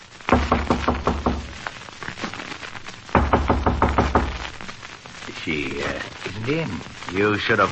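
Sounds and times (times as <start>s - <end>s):
faint room noise: 0.0s - 7.7s
firm knocking on a hotel room door: 0.3s - 1.6s, 3.2s - 4.5s
speech: 5.5s - 7.7s.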